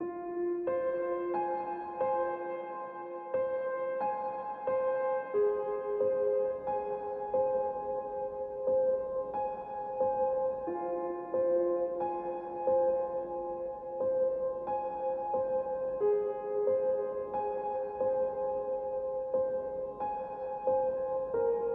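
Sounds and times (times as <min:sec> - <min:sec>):
sad ambient music: 0:00.0 - 0:21.7.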